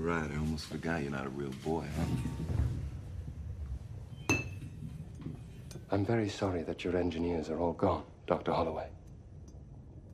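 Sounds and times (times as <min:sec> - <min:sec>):
speech: 0:00.0 - 0:02.8, 0:05.9 - 0:09.0
steady low rumble: 0:00.0 - 0:10.1
single bright glass clink: 0:04.2 - 0:04.8.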